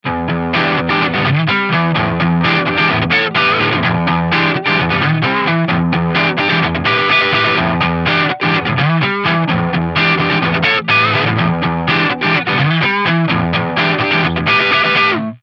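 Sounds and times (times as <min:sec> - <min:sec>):
blues rhythm with fuzz guitar: 0:00.0 - 0:15.4.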